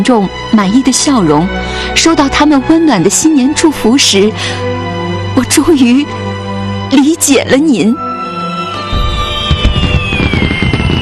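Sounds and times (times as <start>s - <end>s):
speech: 0.0s - 4.7s, 5.4s - 6.2s, 6.9s - 8.1s
fireworks exploding in crackling bursts and low booms: 8.8s - 11.0s.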